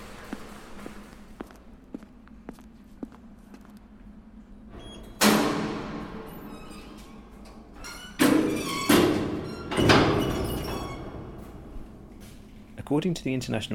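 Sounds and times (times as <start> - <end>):
soft footsteps: 0.0 - 4.6
heavy security door unlatching with a loud clunk and swinging open: 4.7 - 12.3
speech: 12.9 - 13.7.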